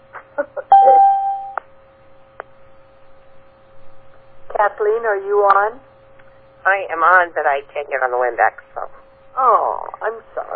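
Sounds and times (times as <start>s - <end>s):
electronic chimes: 0.7s - 1.6s
short tonal beeps: 0.7s - 1.6s
speech: 4.7s - 5.9s, 6.6s - 10.5s.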